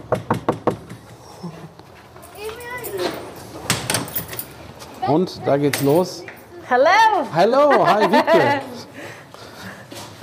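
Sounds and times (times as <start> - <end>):
knocking on a door: 0.0 - 1.0
speech: 5.1 - 9.0
laughter: 7.4 - 9.1.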